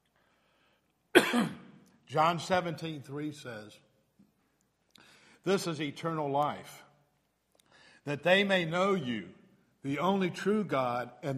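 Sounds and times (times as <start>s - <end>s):
man clearing his throat with a throaty rasp: 1.1s - 1.8s
man coughing harshly: 1.1s - 1.8s
speech: 1.3s - 3.9s, 5.4s - 6.8s, 8.0s - 11.3s.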